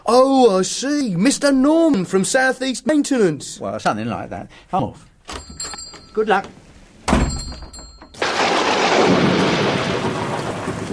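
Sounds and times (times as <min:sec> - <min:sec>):
speech: 0:00.2 - 0:07.2
heavy rain downpour: 0:08.2 - 0:10.9
loud crack of thunder: 0:08.2 - 0:10.9.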